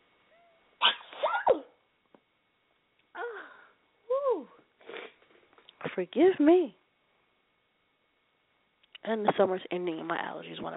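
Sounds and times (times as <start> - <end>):
person sneezing: 0.8 - 1.7, 4.8 - 5.2
speech: 5.9 - 6.8, 9.1 - 10.7.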